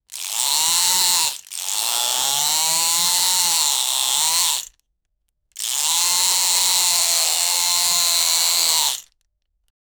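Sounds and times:
rapid power drills driving screws: 0.2s - 4.7s, 5.7s - 9.0s.

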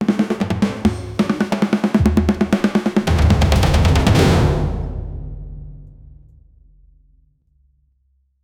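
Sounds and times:
fast paced cinematic tribal drum: 0.0s - 5.8s.

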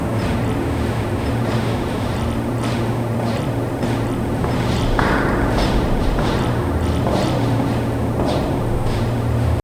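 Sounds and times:
echoing footsteps on concrete in a hallway: 0.1s - 9.6s.

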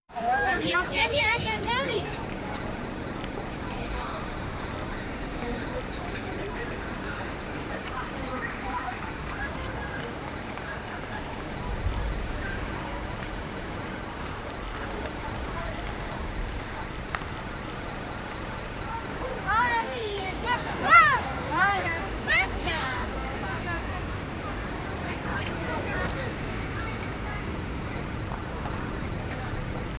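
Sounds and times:
large crowd of people: 0.1s - 29.9s.

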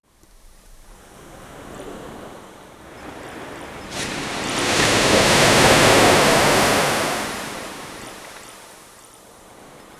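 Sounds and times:
ocean waves crashing: 3.8s - 8.4s.

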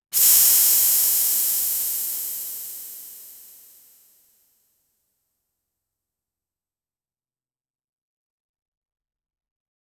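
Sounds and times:
steampunk steam: 0.2s - 3.8s.

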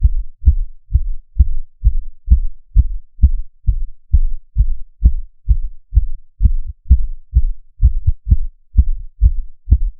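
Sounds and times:
very low muffled heartbeat: 0.0s - 9.9s.

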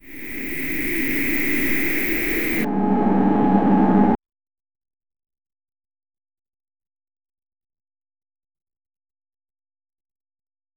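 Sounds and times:
magical world cartoon background ambience: 0.0s - 4.2s.

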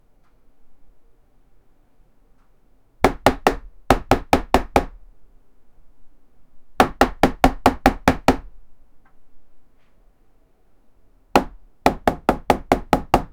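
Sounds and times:
punching on a wood door: 3.0s - 5.0s, 6.8s - 8.5s, 11.4s - 13.3s.

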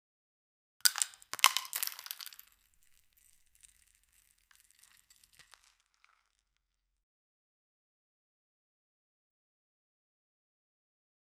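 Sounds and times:
rock candy crushing: 0.8s - 6.6s.

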